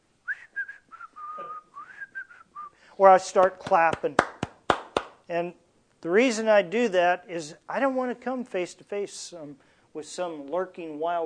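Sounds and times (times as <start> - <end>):
person whistling a tune outside in the dark: 0.3 - 2.8
speech: 3.0 - 4.3, 5.3 - 11.2.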